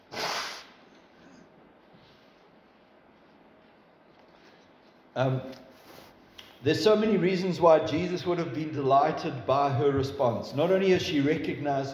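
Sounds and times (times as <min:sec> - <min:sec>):
person blowing their nose: 0:00.0 - 0:00.8
quiet room noise: 0:00.0 - 0:11.9
speech: 0:05.2 - 0:05.6, 0:06.6 - 0:11.9.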